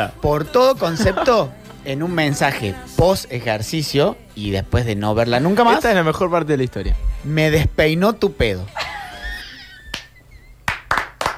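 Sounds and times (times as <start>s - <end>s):
speech: 0.0s - 8.8s
laughter: 0.8s - 1.5s, 8.7s - 10.7s
sharp hand claps in applause: 9.9s - 11.3s.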